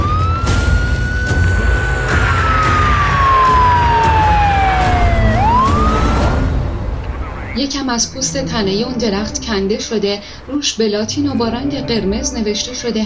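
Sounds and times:
police car siren wailing: 0.0s - 7.7s
steady traffic rumble: 0.0s - 13.0s
speech: 7.8s - 13.0s.

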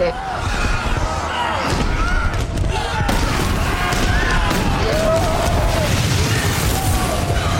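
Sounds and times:
loud sustained explosive roar with deep rumbling: 0.4s - 7.5s
crackling debris: 1.7s - 7.5s.

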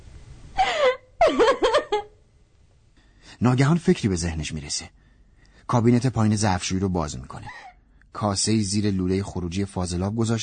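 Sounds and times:
woman crying in a kitchen: 0.6s - 2.1s, 7.4s - 7.8s
speech: 3.4s - 5.1s, 5.7s - 10.4s.

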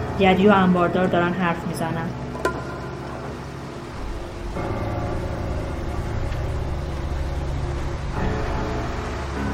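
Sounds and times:
speech: 0.2s - 2.3s
truck engine rumbling while driving into a warehouse: 2.2s - 9.4s.

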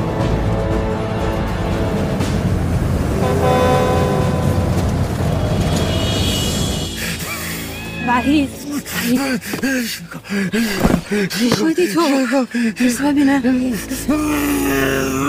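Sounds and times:
pickup truck engine at full throttle overtaking cars on a forest road: 0.5s - 7.7s
brief horn-like tones: 3.2s - 8.4s
speech: 9.1s - 15.2s.

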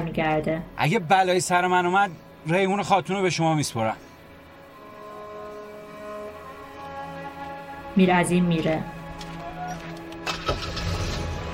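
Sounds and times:
speech: 0.1s - 4.1s, 8.0s - 9.0s
car engine starting before reversing away: 10.0s - 11.5s.

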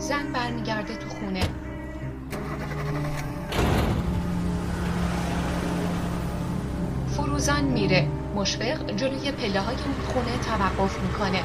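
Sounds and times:
speech: 0.1s - 1.6s, 7.4s - 11.4s
car door shutting with a solid thud: 1.4s - 1.7s, 2.3s - 4.4s
car engine running as the car pulls away outside an old house: 2.3s - 11.4s.

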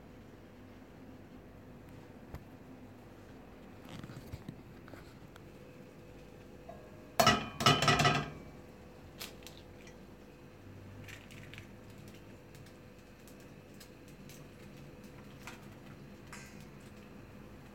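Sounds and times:
low steady hum: 0.0s - 17.7s
egg being cracked open into a frying pan: 11.0s - 17.2s.

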